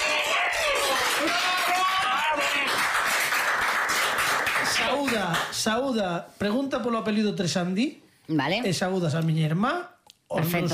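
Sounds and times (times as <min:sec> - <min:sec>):
crowd voices and cheers: 0:00.0 - 0:02.8
audience applause for a television presenter: 0:00.0 - 0:05.5
speech: 0:04.9 - 0:10.7.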